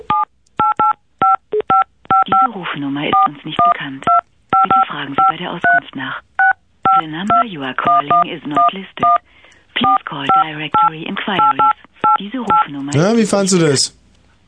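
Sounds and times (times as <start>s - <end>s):
telephone keypad dual-tone beeps tapped as a rhythmic tune: 0.0s - 2.5s, 3.1s - 5.8s, 6.4s - 9.2s, 9.8s - 12.7s
speech: 2.6s - 4.2s, 5.0s - 6.3s, 6.9s - 14.0s.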